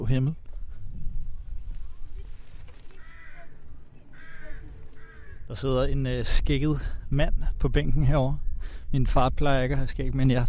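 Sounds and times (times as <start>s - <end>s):
wind: 0.0s - 10.4s
speech: 0.1s - 0.4s, 5.5s - 10.4s
crows cawing: 1.8s - 5.6s.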